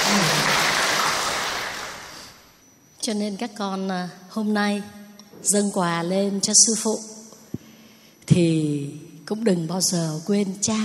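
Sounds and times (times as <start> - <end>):
audience applauding in honour of fathers: 0.0 - 2.4
speech: 3.1 - 7.1, 8.3 - 10.8.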